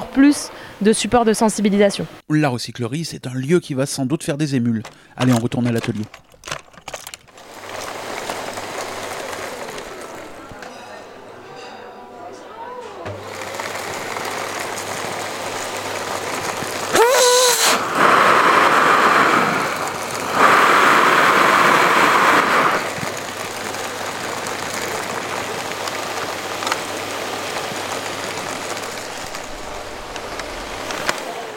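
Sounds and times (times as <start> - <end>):
speech: 0.2 - 6.2
repaired vacuum cleaner running in a recycling-centre workshop: 7.4 - 10.8, 13.0 - 31.5.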